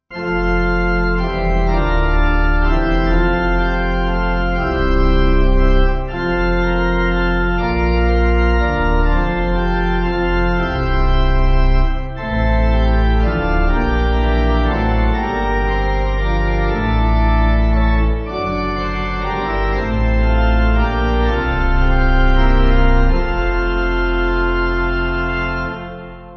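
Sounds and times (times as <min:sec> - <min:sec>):
pipe organ piece: 0:00.0 - 0:26.3.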